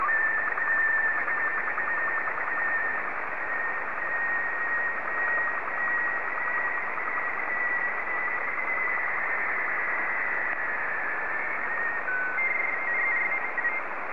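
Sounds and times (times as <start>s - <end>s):
Robot 12 black and white slow-scan television signal: 0.0s - 14.1s.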